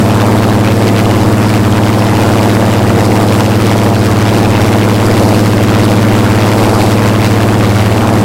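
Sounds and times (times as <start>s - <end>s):
Griffon engines from the rear: 0.0s - 8.2s.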